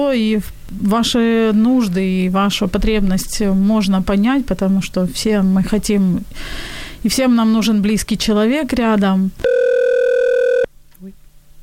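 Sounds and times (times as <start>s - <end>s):
speech: 0.0s - 9.6s
electronic ring tone of an incoming phone call: 9.4s - 10.7s.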